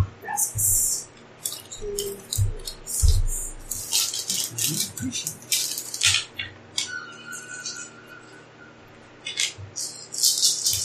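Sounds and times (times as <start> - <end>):
speech: 0.4 - 0.7, 5.0 - 5.4
dice rolled during a tabletop game: 1.4 - 6.3, 9.3 - 10.8.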